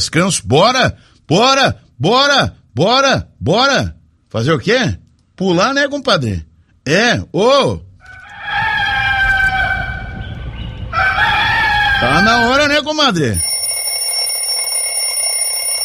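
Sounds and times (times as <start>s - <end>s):
speech: 0.1s - 7.9s, 12.0s - 13.5s
rooster crowing: 8.0s - 12.7s
alarm clock ringing with a shrill electronic tone: 13.4s - 15.8s.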